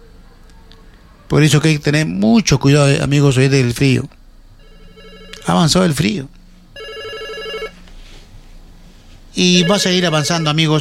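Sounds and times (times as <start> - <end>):
speech: 1.3 - 4.2, 5.5 - 6.4, 9.4 - 10.7
telephone ringing with an incoming call: 4.6 - 5.8, 6.7 - 7.8, 9.4 - 10.7.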